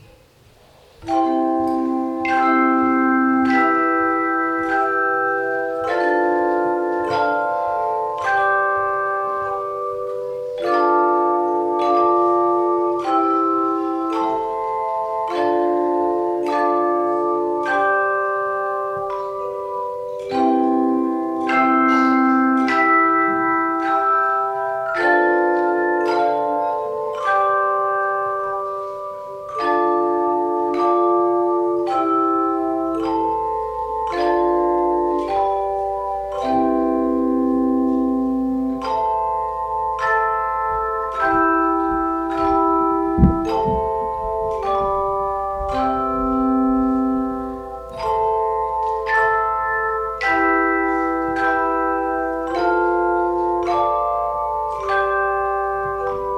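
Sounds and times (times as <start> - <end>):
hand chimes in C major: 0.0 - 56.3.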